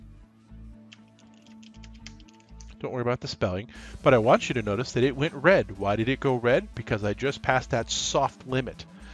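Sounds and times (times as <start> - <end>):
typing on a computer keyboard: 0.9 - 2.7
speech: 2.8 - 8.9.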